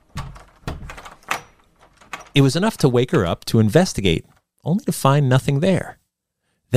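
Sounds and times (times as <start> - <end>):
door to a boy's room in a house rattling in its frame: 0.0 - 3.8
speech: 2.4 - 6.0.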